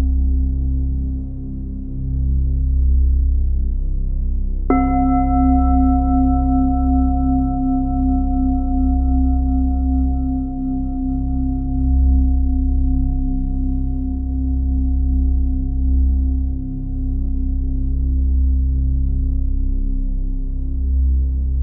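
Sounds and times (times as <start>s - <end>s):
deep steady low hum: 0.0s - 21.6s
large Tibetan singing bowl struck and ringing: 4.7s - 17.6s.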